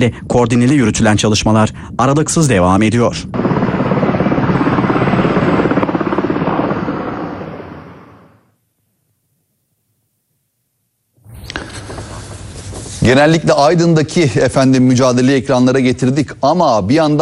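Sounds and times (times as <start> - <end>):
speech: 0.0 - 3.6, 13.0 - 17.2
helicopters flying during wildfire firefighting operations: 2.4 - 8.5.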